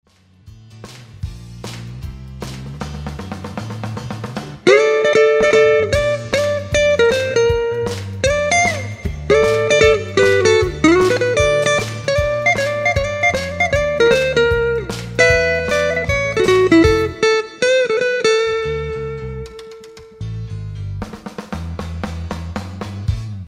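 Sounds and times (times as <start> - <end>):
Fender Stratocaster electric guitar: 4.6 - 20.4.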